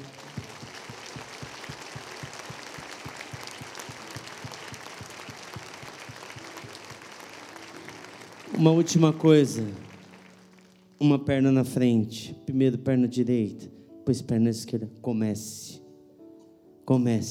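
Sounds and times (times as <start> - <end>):
congregation clapping in rhythmic applause: 0.0 - 11.1
speech: 8.6 - 9.8, 11.0 - 15.8, 16.9 - 17.2.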